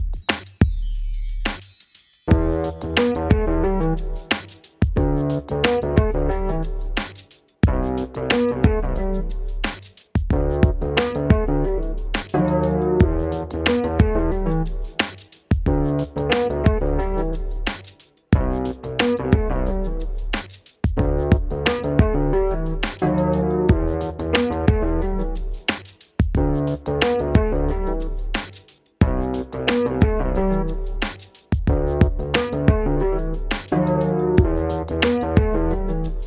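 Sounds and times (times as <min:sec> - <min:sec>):
dubstep music tuned to 432 Hz: 0:00.1 - 0:36.2.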